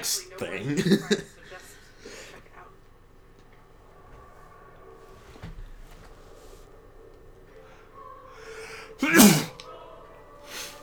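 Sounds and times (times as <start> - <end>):
murmur: 0.0 - 10.8
speech: 0.1 - 1.4
laughter: 0.4 - 2.5
person sneezing: 9.0 - 9.6.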